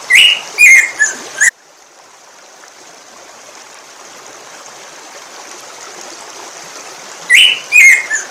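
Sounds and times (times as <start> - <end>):
black-throated grosbeak whistled call: 0.1 - 1.5, 7.3 - 8.2.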